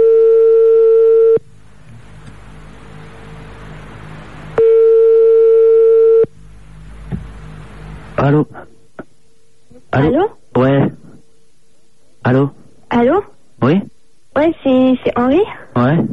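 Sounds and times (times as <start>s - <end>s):
French telephone ringback tone beeps: 0.0s - 1.4s, 4.6s - 6.3s
speech: 8.3s - 8.6s, 10.0s - 10.7s, 12.3s - 16.1s.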